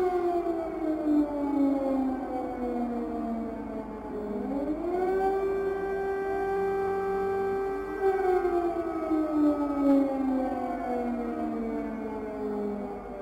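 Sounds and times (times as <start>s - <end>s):
air raid siren wailing: 0.0s - 13.1s.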